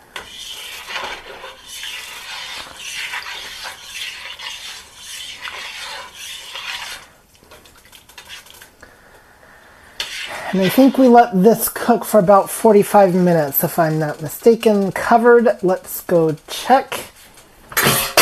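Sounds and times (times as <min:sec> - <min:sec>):
spoon stirring seasoned food in a pot: 0:00.0 - 0:09.0, 0:09.9 - 0:18.2
speech: 0:10.6 - 0:17.0.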